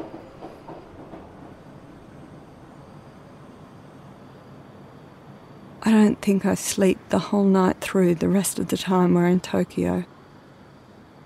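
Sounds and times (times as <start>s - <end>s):
subway train rumbling along the rails: 0.0s - 11.2s
speech: 5.8s - 10.1s.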